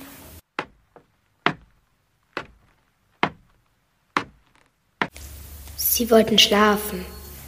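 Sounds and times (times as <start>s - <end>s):
slow heavy footsteps climbing a staircase: 0.4s - 5.2s
speech: 6.0s - 7.2s.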